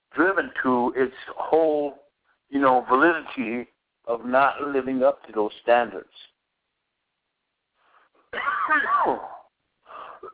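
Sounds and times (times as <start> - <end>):
speech: 0.4 - 6.3, 8.4 - 9.4
faint breathy noise: 7.7 - 8.3, 9.8 - 10.3
dry cough: 8.3 - 10.3.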